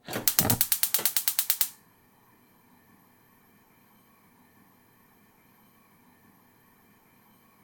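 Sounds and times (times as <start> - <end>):
kitchen gas switch: 0.0 - 1.8.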